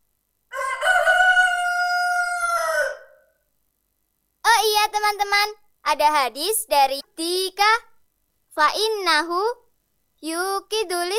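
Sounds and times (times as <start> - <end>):
rooster crowing: 0.5 - 3.4
speech: 5.1 - 7.9, 8.6 - 9.6, 10.2 - 11.1.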